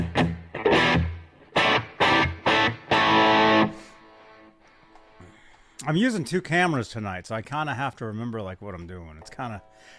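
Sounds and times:
distorted electric guitar chord stabs with heavy delay and reverb: 0.0s - 5.2s
speech: 5.8s - 9.9s.

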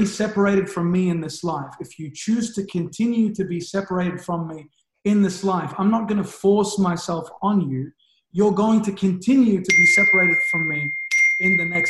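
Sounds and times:
speech: 0.0s - 11.8s
phone notification chime: 9.7s - 11.8s.

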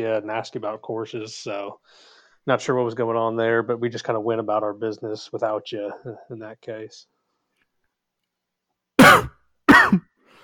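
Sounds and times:
speech: 0.0s - 7.1s
faint trailing breath: 1.8s - 2.4s, 10.2s - 10.4s
harsh throat-clearing coughs: 9.0s - 10.2s.

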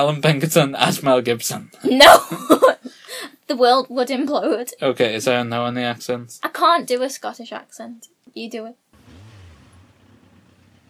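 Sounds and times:
speech: 0.0s - 2.8s, 3.5s - 8.8s
voice imitating a revving motorbike: 9.0s - 10.8s.

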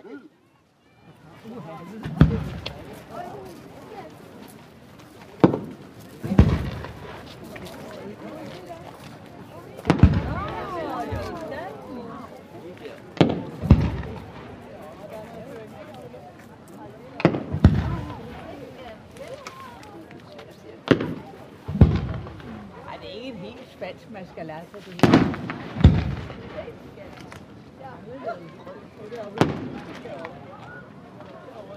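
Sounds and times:
murmuring crowd: 0.0s - 31.7s
speech: 1.5s - 3.7s, 24.0s - 25.8s
fireworks exploding at harbour celebration: 1.6s - 4.1s, 5.3s - 12.2s, 13.0s - 15.5s, 17.2s - 19.9s, 20.8s - 27.6s, 29.2s - 30.5s.

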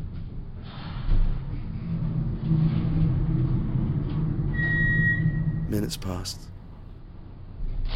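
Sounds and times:
service lift descending with mechanical rumble and hum: 1.3s - 6.9s
speech: 5.7s - 6.6s.

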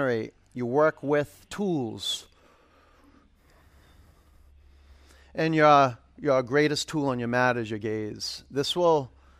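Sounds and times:
speech: 0.0s - 2.3s, 5.4s - 9.2s
ujjayi breathing through the nose: 2.3s - 5.4s, 9.1s - 9.3s.

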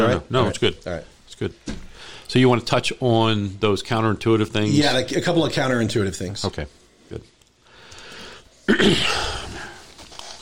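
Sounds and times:
speech: 0.1s - 7.3s, 8.7s - 9.4s
throat clearing: 8.7s - 9.6s.

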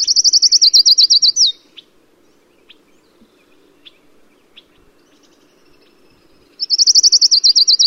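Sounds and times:
Colima warbler song in the Chisos Mountains of Big Bend National Park: 0.0s - 7.8s.

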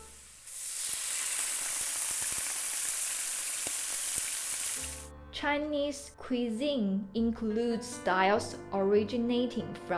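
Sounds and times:
tofu sizzling as it fries in a pan in Chinese cooking: 0.0s - 5.1s
speech: 5.4s - 9.9s.

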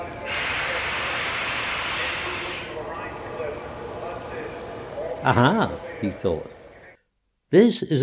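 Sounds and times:
steam engines puffing at a busy railway yard: 0.1s - 2.9s
speech: 5.3s - 6.6s, 7.5s - 8.0s.

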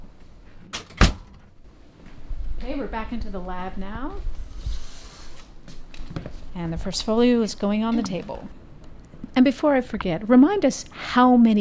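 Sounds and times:
door creaking shut: 0.7s - 1.4s
speech: 2.6s - 4.4s, 6.6s - 8.6s, 9.4s - 11.6s.

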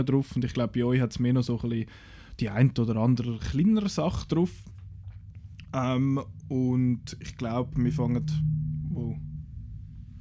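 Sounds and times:
speech: 0.0s - 4.8s, 5.7s - 9.2s
train rumbling past: 4.7s - 10.1s.

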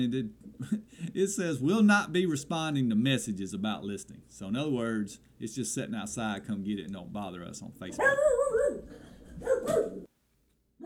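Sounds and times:
speech: 0.0s - 10.0s
two dogs barking: 8.0s - 10.1s.

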